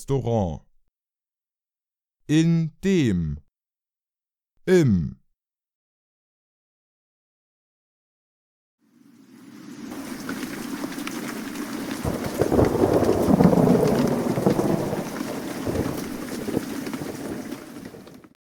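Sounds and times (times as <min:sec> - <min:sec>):
speech: 0:00.0 - 0:00.7, 0:02.3 - 0:03.4, 0:04.7 - 0:05.2
steady rain pouring down: 0:09.0 - 0:18.4.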